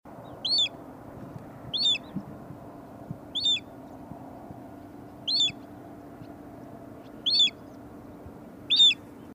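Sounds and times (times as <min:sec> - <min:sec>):
Little Ringed Plover: 0:00.2 - 0:09.3.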